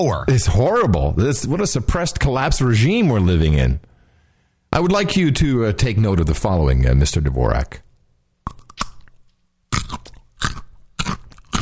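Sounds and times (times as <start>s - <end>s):
speech: 0.0s - 3.9s, 4.7s - 7.8s
biting a crunchy sweet Texas carrot: 8.4s - 11.6s
loud chewing of carrot: 8.5s - 11.6s.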